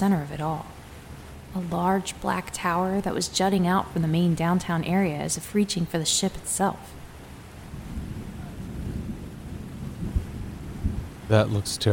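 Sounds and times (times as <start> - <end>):
speech: 0.0 - 0.8, 1.5 - 7.0, 11.3 - 11.9
windy storm noise: 0.0 - 11.9
rolling thunder: 7.6 - 11.7.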